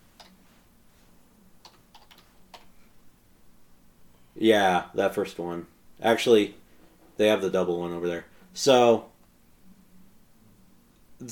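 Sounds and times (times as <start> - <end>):
scattered keystrokes on a computer keyboard: 1.6 - 2.7
speech: 4.4 - 6.6, 7.2 - 9.1.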